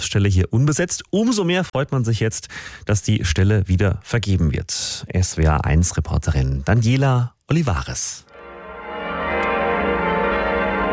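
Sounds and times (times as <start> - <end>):
speech: 0.0 - 8.3
church bells ringing: 8.3 - 10.9.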